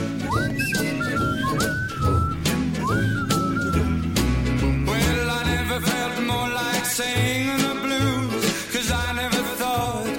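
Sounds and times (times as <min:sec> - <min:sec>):
person whistling a sliding melody: 0:00.0 - 0:04.4
steady full musical backing: 0:00.0 - 0:10.1.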